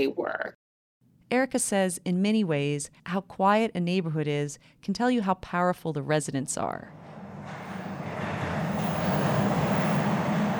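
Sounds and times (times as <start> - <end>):
speech: 0.0 - 0.6, 1.3 - 7.6
subway train rumbling on tracks in Boston: 6.6 - 10.5.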